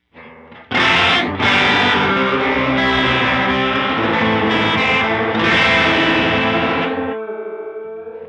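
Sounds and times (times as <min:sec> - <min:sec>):
chorus effect with LFO sine modulation: 0:00.0 - 0:08.2.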